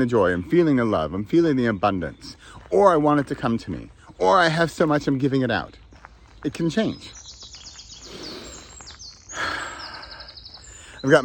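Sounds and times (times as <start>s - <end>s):
speech: 0.0s - 5.8s, 6.4s - 7.2s, 11.0s - 11.2s
birds chirping outdoors: 0.0s - 11.2s
soft breath or gasp-like sound: 8.0s - 11.0s.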